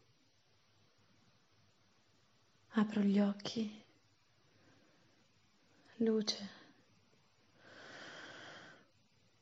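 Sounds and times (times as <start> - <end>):
speech: 2.8 - 3.8, 6.0 - 6.6
long airy breath drawn in: 7.6 - 9.0.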